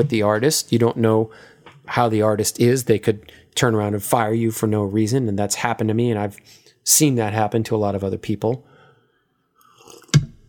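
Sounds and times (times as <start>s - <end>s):
speech: 0.0s - 8.7s
sipping tea: 9.6s - 10.4s.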